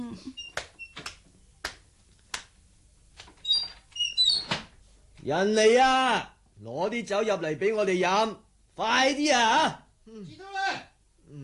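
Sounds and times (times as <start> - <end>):
speech: 0.2 - 0.5, 5.2 - 11.4
wooden door creaking open on squeaky hinges: 3.2 - 4.7.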